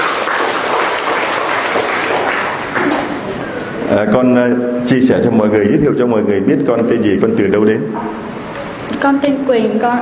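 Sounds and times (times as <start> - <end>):
crowd clapping to welcome a young person: 0.0 - 3.3
speech: 3.9 - 8.4, 9.0 - 10.0.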